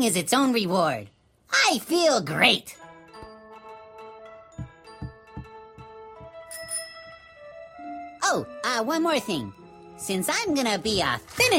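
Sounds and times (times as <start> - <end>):
speech: 0.0 - 2.8, 8.3 - 11.5
bicycle bell ringing: 6.5 - 7.3.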